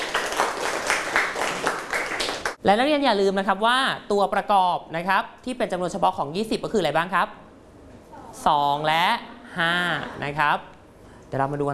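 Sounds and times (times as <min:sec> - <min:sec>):
students clapping for a classmate in a classroom: 0:00.0 - 0:02.6
speech: 0:02.6 - 0:07.4, 0:08.4 - 0:10.7, 0:11.3 - 0:11.7.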